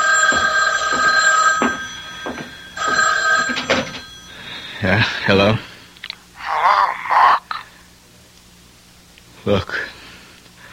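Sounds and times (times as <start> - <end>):
old-style telephone bell ringing: 0.0 - 5.3
speech: 4.8 - 5.7, 9.5 - 9.9.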